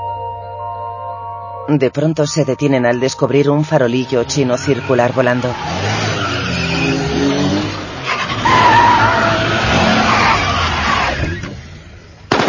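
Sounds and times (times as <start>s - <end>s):
speech: 1.7s - 5.8s
car tires screeching in a skid: 4.0s - 12.2s
car engines growling in a car chase beside a bridge: 4.0s - 12.4s.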